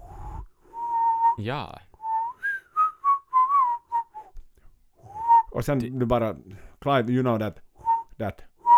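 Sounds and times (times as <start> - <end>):
person whistling an imitation of a church bell chime: 0.0 - 1.4, 2.0 - 4.4, 5.0 - 5.5, 7.8 - 8.7
speech: 1.4 - 1.9, 5.6 - 7.6, 8.2 - 8.5.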